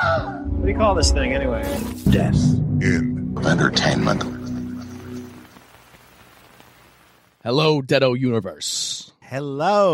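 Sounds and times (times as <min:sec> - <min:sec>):
speech: 0:00.6 - 0:04.4, 0:07.4 - 0:09.9
steady rain pattering outside: 0:03.8 - 0:07.6.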